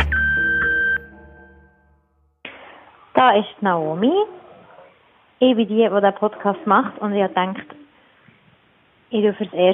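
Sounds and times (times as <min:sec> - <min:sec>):
answering machine beep: 0:00.1 - 0:01.1
speech: 0:03.2 - 0:04.4, 0:05.4 - 0:07.8, 0:09.1 - 0:09.7.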